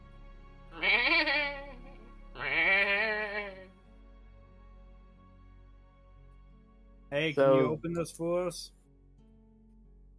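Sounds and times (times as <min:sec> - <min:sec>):
sheep bleating: 0:00.7 - 0:03.8
speech: 0:07.2 - 0:08.8.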